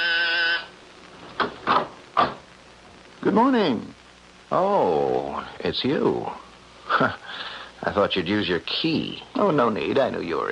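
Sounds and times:
harsh electric door buzzer: 0.0 - 0.8
speech: 3.4 - 10.5.

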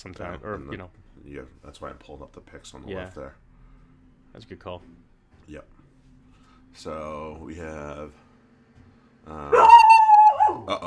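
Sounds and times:
speech: 0.0 - 3.5, 4.3 - 5.8, 6.7 - 8.2, 9.2 - 9.9, 10.5 - 10.8
dog barking and whining: 9.5 - 10.8.

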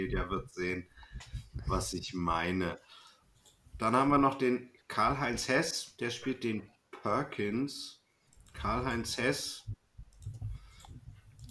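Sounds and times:
speech: 0.0 - 3.0, 3.8 - 8.0, 8.6 - 9.8
soft computer mouse clicks: 8.3 - 8.6, 10.1 - 11.4.

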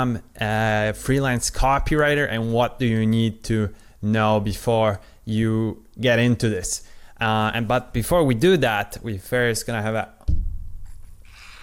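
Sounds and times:
speech: 0.0 - 10.2
soft thump: 10.3 - 11.0.

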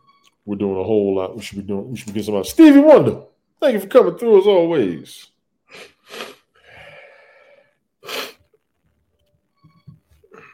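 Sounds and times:
speech: 0.4 - 6.2
congested sniffling from a head cold: 5.7 - 7.4, 8.0 - 8.5.

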